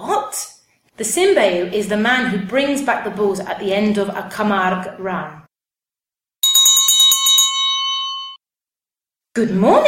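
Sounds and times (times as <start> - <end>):
speech: 0.4 - 5.4, 9.4 - 9.8
herdsman's bell clanging at the pond of Vacares: 6.4 - 8.4.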